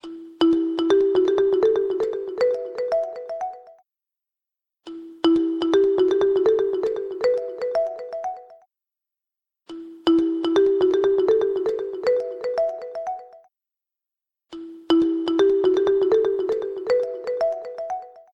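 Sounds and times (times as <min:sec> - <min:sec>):
ZTE Axon-M phone ringtone: 0:00.0 - 0:03.8, 0:04.9 - 0:08.7, 0:10.1 - 0:13.5, 0:14.9 - 0:18.3.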